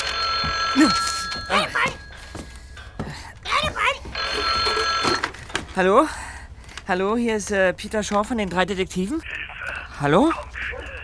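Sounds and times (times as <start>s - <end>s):
old-style telephone bell ringing: 0.0s - 5.4s
speech: 0.7s - 2.0s, 5.8s - 6.2s, 6.9s - 9.4s, 10.0s - 10.8s.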